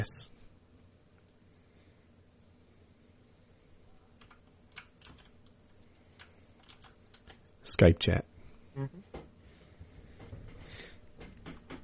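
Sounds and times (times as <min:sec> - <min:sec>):
speech: 0:00.0 - 0:00.3, 0:07.8 - 0:09.1
steady low hum: 0:00.0 - 0:11.8
fingers typing on a computer keyboard: 0:04.2 - 0:07.5.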